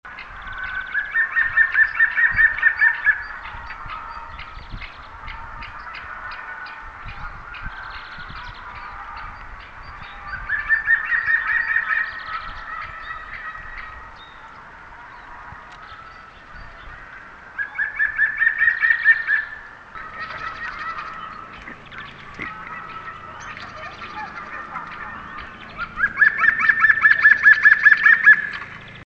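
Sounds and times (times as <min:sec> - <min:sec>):
Picus viridis: 0:00.1 - 0:29.0.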